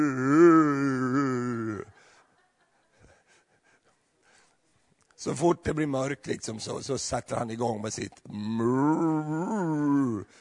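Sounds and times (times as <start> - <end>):
person imitating a cow mooing: 0.0 - 1.9, 8.4 - 10.3
speech: 5.2 - 10.3.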